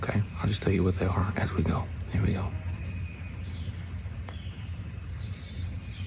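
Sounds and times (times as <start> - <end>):
Carolina chickadee calling: 0.0 - 6.0
steady low rumble of outdoor noise: 0.0 - 6.0
speech: 0.4 - 2.7.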